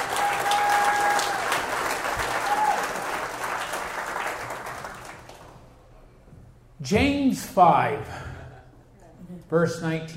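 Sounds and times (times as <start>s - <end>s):
large convention audience applauding the convention committee: 0.0s - 5.6s
speech: 6.9s - 8.2s, 9.5s - 10.1s.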